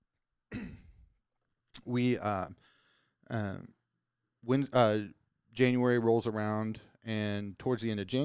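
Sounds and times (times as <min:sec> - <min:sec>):
muffled throat clearing with a rough coughing edge: 0:00.5 - 0:01.0
speech: 0:01.9 - 0:02.7, 0:03.3 - 0:03.8, 0:04.4 - 0:08.2.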